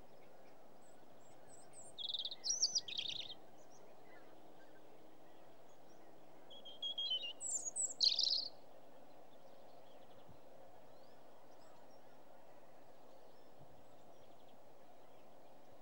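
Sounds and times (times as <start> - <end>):
European robin singing: 0.8 - 4.3, 5.8 - 8.6.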